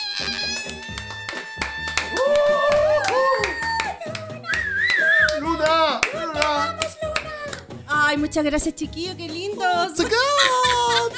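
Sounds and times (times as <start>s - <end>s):
excited voices whooping and cheering: 0.0s - 5.6s
small group clapping hands: 0.2s - 7.8s
speech: 8.1s - 11.1s
laughter: 10.0s - 11.1s.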